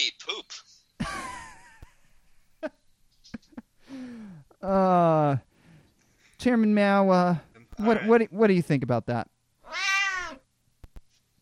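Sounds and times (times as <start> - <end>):
speech: 0.0 - 1.3, 4.6 - 5.5, 6.4 - 9.3
cat meowing: 9.6 - 10.4.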